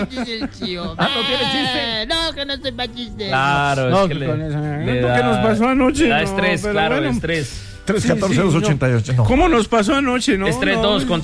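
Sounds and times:
laughter: 0.0 - 2.1
speech: 0.0 - 11.2
voice imitating a goat bleating: 1.0 - 2.0.

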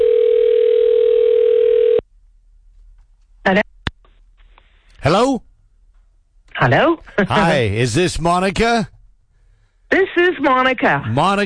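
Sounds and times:
telephone dial tone: 0.0 - 2.0
speech: 6.6 - 8.9, 9.9 - 11.4.

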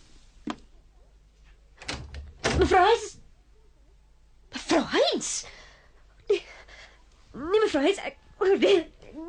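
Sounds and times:
room door shutting with a low thunk: 1.8 - 2.8
speech: 2.6 - 3.2, 7.8 - 8.9.

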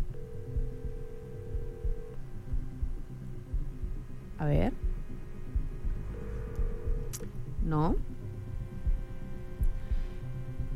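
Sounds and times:
ringback tone of an unanswered telephone call: 0.0 - 2.2, 6.1 - 7.1
soft irregular low thumps: 0.0 - 10.7
speech: 4.4 - 4.8, 7.7 - 8.0.

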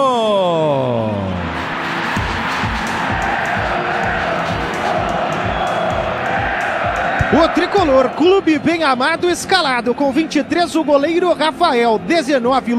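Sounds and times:
huge stadium crowd cheering and chanting as football team enters: 0.8 - 12.7
opening sweeping tone: 1.4 - 7.2
rhythmic thumps like clapping or drumming: 1.5 - 9.5
speech: 7.4 - 12.7.

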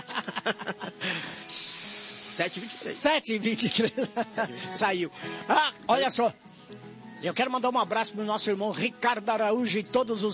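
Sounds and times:
laughter: 0.0 - 1.4, 3.4 - 5.7
speech: 0.4 - 0.8, 2.4 - 6.5, 7.2 - 10.3
kettle hissing with steam: 1.0 - 3.3.

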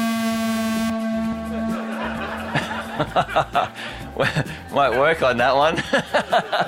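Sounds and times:
automated horn signalling the hour at a timed lap event: 0.0 - 3.6
people laughing: 1.2 - 6.6
speech: 3.0 - 6.6.

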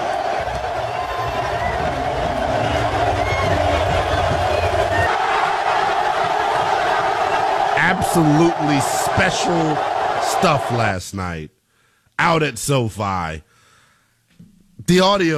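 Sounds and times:
huge stadium crowd roaring and cheering: 0.0 - 11.0
speech: 8.2 - 11.6, 12.2 - 13.5, 14.9 - 15.3.

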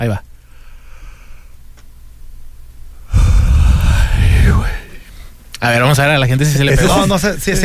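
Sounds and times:
speech: 0.0 - 0.3, 5.6 - 7.6
person giving a long exaggerated yawn: 3.1 - 5.1.

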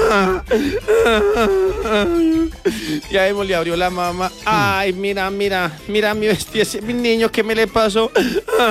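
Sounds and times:
boy crying as he arrives home: 0.0 - 2.7, 4.5 - 4.8, 8.2 - 8.7
speech: 0.1 - 8.7.

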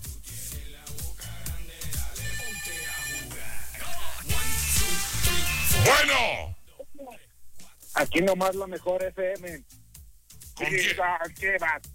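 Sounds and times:
busy continuous noise: 0.0 - 11.9
electronic ring tones of an outgoing telephone call: 2.2 - 3.4
speech: 8.0 - 9.7, 10.6 - 11.9.

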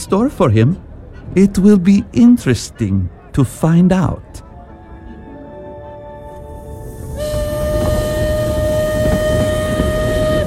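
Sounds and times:
speech: 0.0 - 4.4
train rumbling at a railway station: 0.0 - 10.4
high whistle-like tone: 6.8 - 10.4.

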